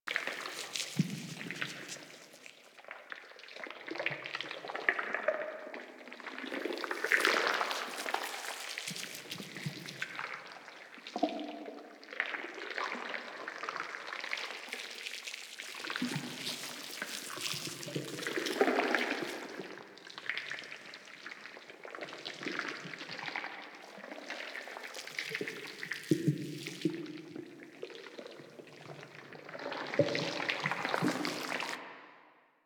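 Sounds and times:
goo pond bubbling: 0:00.1 - 0:31.8.

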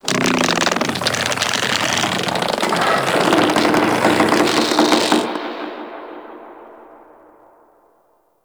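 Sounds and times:
infested golem wings opening: 0:00.0 - 0:05.4.

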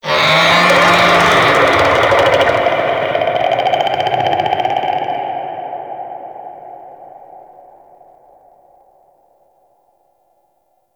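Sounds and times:
infested golem vocal attack: 0:00.0 - 0:04.4.

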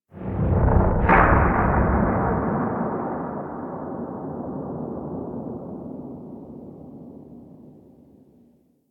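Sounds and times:
distant seismic explosion outside a gas city: 0:00.1 - 0:07.2.

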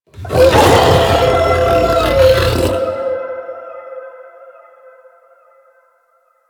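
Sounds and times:
enemy alerted howl vocal: 0:00.2 - 0:03.8.

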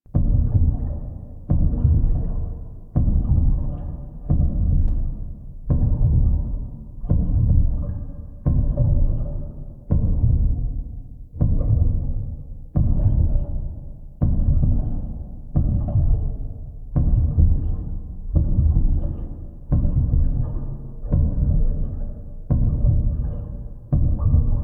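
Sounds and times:
heartbeat loop: 0:00.1 - 0:24.6.

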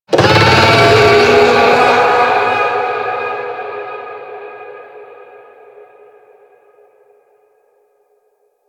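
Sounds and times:
infested golem vocal attack: 0:00.1 - 0:03.8.

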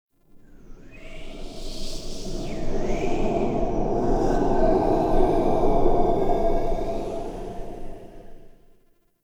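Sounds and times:
corrupted wind gust ambience: 0:00.6 - 0:08.7.

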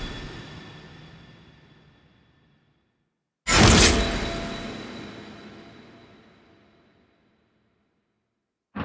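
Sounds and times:
sword stab: 0:03.5 - 0:06.2.

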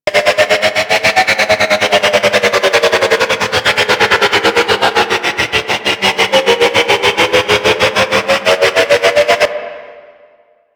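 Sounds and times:
train drone: 0:00.0 - 0:10.5.

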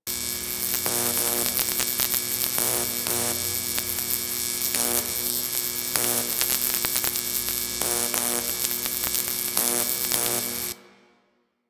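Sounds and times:
light flickering: 0:00.1 - 0:10.8.

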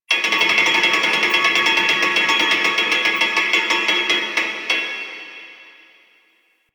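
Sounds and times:
music loop: 0:00.1 - 0:04.4.

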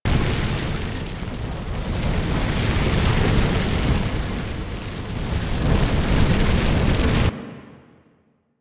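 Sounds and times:
fire crackling: 0:00.0 - 0:07.3.

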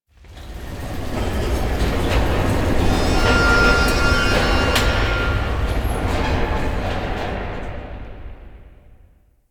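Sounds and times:
mining machines on an asteroid: 0:01.1 - 0:07.0.

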